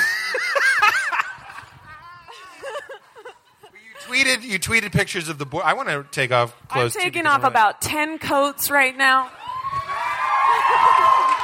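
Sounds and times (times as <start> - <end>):
laughter: 0.0 - 4.6
speech: 4.3 - 9.4
live audience cheering, shouting and whooping: 9.3 - 11.4.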